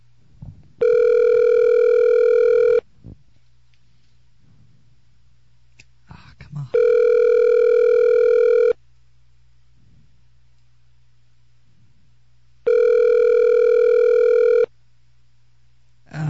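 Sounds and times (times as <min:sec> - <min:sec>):
faint low hum: 0:00.0 - 0:16.2
telephone ringback tone from a call made on a cell phone: 0:00.8 - 0:02.8, 0:06.8 - 0:08.8, 0:12.7 - 0:14.7.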